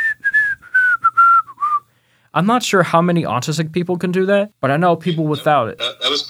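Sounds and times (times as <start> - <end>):
person whistling: 0.0 - 1.8
speech: 2.3 - 6.2.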